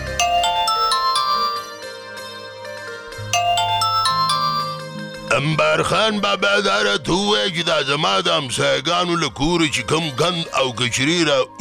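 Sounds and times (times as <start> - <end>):
electronic ringtone for an incoming telephone call: 0.2 - 2.3, 3.3 - 5.2
speech: 5.8 - 11.5.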